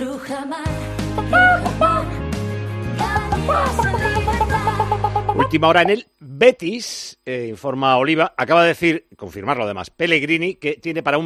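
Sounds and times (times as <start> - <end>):
speech: 0.2 - 1.4, 3.5 - 4.5, 5.5 - 11.2
music with sustained low bass notes: 0.9 - 5.9
hens clucking: 3.3 - 6.0.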